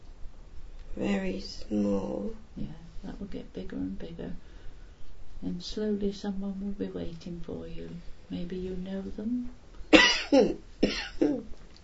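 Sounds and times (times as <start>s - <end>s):
speech: 1.0s - 4.5s, 5.4s - 9.6s, 10.3s - 11.6s
dry coughs from a dry throat: 9.9s - 11.5s.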